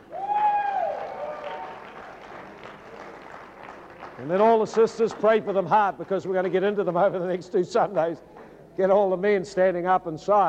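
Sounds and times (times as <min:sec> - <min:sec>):
crowd applauding: 0:00.0 - 0:06.9
speech: 0:04.2 - 0:10.4.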